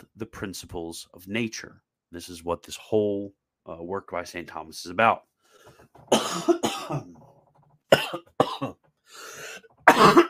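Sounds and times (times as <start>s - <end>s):
speech: 0.2s - 5.3s, 5.9s - 7.2s
harsh hacking coughing fit: 6.1s - 7.2s, 7.9s - 8.8s, 9.4s - 10.2s
raspy breath drawn in: 9.0s - 9.7s.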